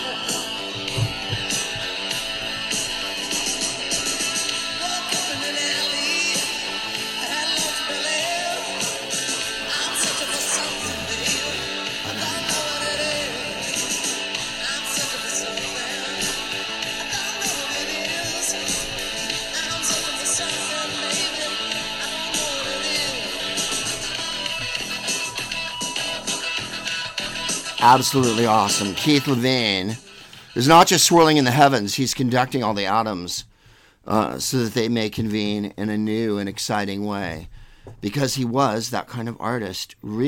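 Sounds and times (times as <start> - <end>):
dense noisy experimental rock track with distorted sound: 0.0 - 30.5
wailing caterwauling vocals and screams: 9.6 - 15.3
speech: 27.9 - 40.2.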